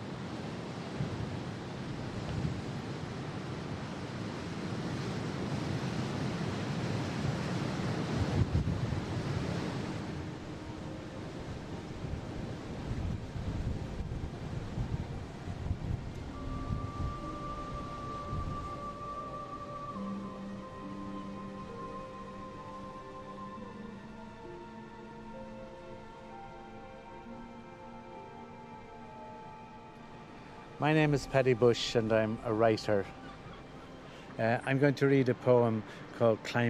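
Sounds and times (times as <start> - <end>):
strong wind buffeting microphone: 0.0 - 20.6
ocean surf: 0.0 - 36.6
speech: 30.8 - 33.2, 34.4 - 36.6.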